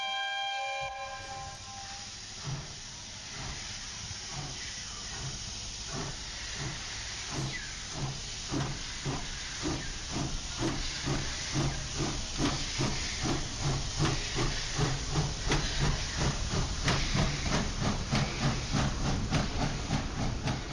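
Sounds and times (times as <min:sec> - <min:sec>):
short tonal steam locomotive whistle: 0:00.0 - 0:02.3
steam locomotive hissing: 0:00.0 - 0:20.7.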